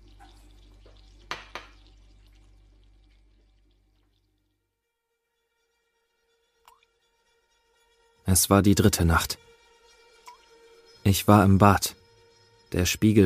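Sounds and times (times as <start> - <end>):
coffee pouring into a cup: 0.0 - 4.6
spoon tapping against a cup: 1.3 - 1.8
speech: 8.3 - 9.4, 11.1 - 12.0, 12.7 - 13.2.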